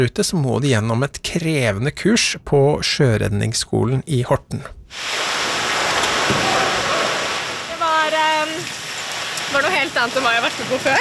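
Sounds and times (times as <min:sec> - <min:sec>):
speech: 0:00.0 - 0:05.4, 0:09.5 - 0:11.0
heavy waves rushing and splashing: 0:04.9 - 0:11.0.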